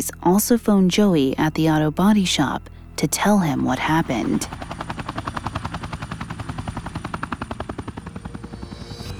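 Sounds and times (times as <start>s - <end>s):
speech: 0.0s - 4.8s
police helicopter engine roar: 3.1s - 9.1s
police helicopter rotor thumping: 3.8s - 9.1s.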